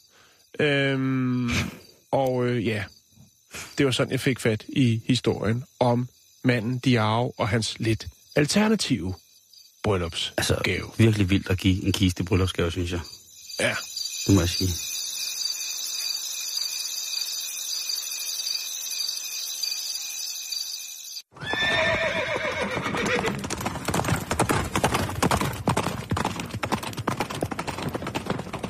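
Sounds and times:
insects chirring: 0.0 - 28.6
speech: 0.5 - 1.8, 2.6 - 9.2, 9.8 - 14.9
horse whinnying: 21.3 - 23.6
horse hooves galloping: 21.3 - 28.6.

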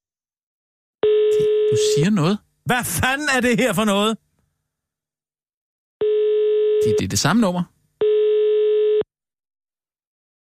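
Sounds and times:
telephone ringing tone of a redialled mobile number: 1.0 - 2.0, 6.0 - 7.2, 8.0 - 9.1
speech: 1.7 - 4.2, 6.8 - 7.8.

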